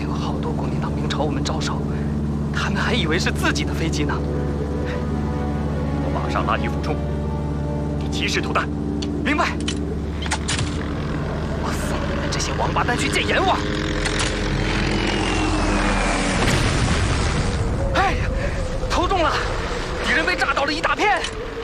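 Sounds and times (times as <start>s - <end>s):
propeller plane droning: 0.0s - 21.6s
aerial bombs exploding: 16.4s - 17.6s.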